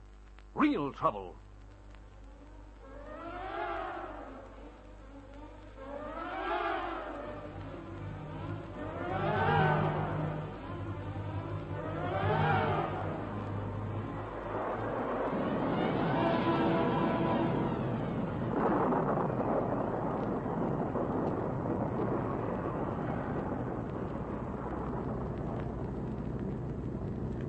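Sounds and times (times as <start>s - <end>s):
speech: 0.6s - 1.5s
storm wind howling in driving gusts: 5.8s - 27.4s
loud continuous roaring rumble: 6.0s - 27.4s.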